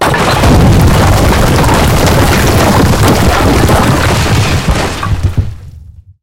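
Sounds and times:
big building collapsing: 0:00.0 - 0:06.0.

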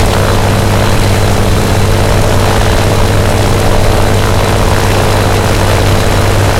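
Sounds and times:
Messerschmitt Bf 109 engines: 0:00.0 - 0:06.5.

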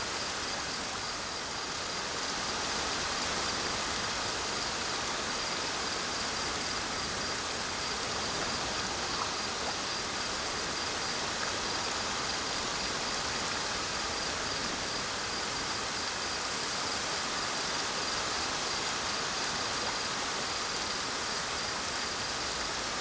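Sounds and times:
calm rainy forest at night: 0:00.0 - 0:22.9.

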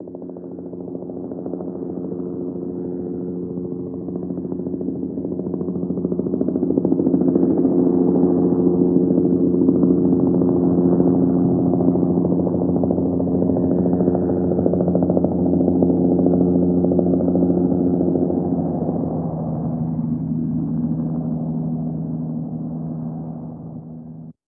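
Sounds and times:
helicopter flyover heard from the interior: 0:00.0 - 0:24.4.

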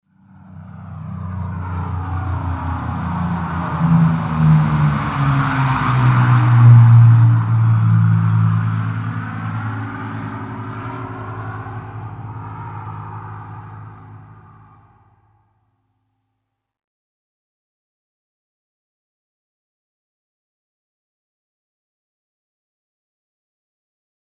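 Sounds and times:
vehicle passing by in an airfield hangar: 0:00.2 - 0:15.0.

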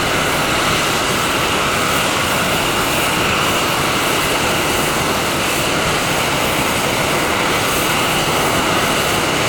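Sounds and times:
Su27 aircraft engines: 0:00.0 - 0:09.4.

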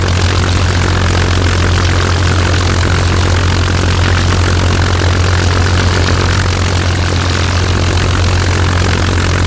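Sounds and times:
DB605 aircraft engines: 0:00.0 - 0:09.4.

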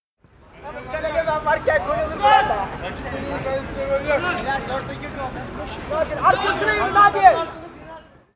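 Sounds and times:
distant voice: 0:00.4 - 0:08.3.

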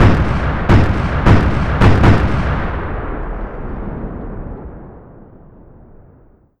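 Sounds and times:
heavily filtered cannon sequence: 0:00.0 - 0:06.5.

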